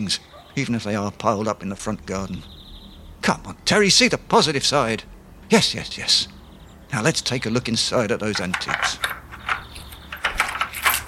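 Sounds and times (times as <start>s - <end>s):
speech: 0.0s - 2.6s, 3.2s - 9.2s
metal keys jangling, tried in a door lock: 8.4s - 11.0s.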